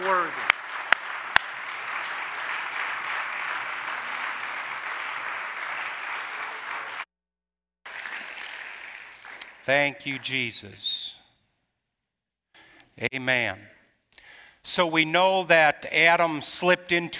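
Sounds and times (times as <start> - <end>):
audience clapping in sustained dense applause: 0.0 - 7.1, 7.9 - 10.4
speech: 9.6 - 11.2, 13.0 - 13.8, 14.6 - 17.1.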